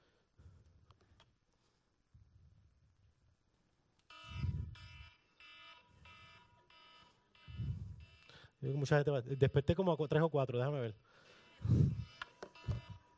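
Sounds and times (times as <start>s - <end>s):
electronic alarm beeping: 4.1s - 13.1s
speech: 8.6s - 11.8s.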